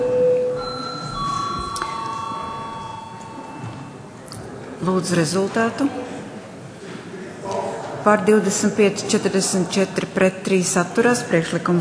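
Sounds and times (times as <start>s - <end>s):
parliamentary voting bell ringing with electronic tones: 0.0s - 4.1s
murmuring room background: 0.6s - 11.7s
speech: 4.8s - 6.1s, 8.0s - 11.7s.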